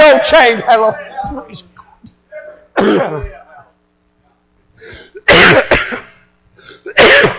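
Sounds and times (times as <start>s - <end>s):
speech: 0.1s - 1.7s, 2.8s - 3.4s
loud harsh coughs: 2.7s - 3.5s, 4.9s - 7.3s.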